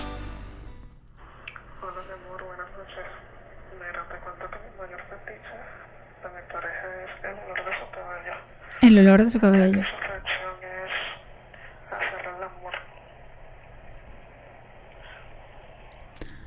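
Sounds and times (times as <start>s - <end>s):
muffled distorted voice message through a phone speaker: 1.8s - 11.2s
speech: 1.9s - 10.4s.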